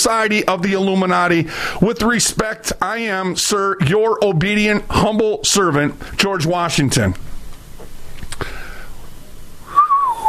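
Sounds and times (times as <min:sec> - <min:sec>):
speech: 0:00.0 - 0:07.3
human whistling short notes: 0:09.7 - 0:10.2.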